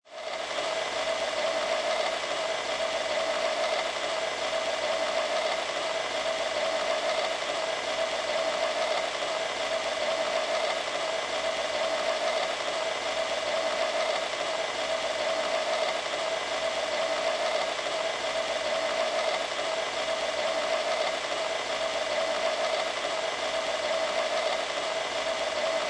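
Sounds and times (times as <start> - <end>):
small-to-medium conveyor belt running steady: 0.1 - 25.8.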